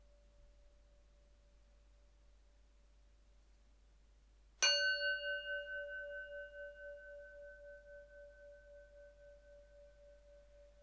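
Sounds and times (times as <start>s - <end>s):
meditation bell ringing: 4.6s - 10.8s.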